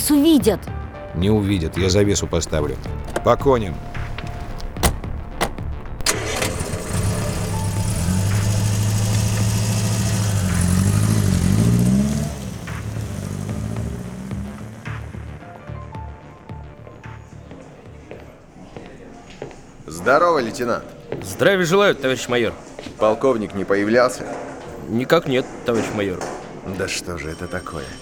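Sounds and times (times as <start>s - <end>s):
speech: 0.1s - 3.9s, 20.1s - 28.0s
car engine starting, idling and revving as the car drives off: 3.8s - 16.1s.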